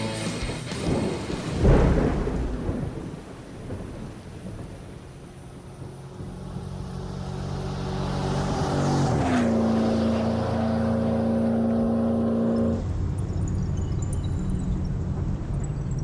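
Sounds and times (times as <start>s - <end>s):
rumbling road noise: 0.0s - 16.0s
car engine droning while driving on a back road: 4.7s - 16.0s.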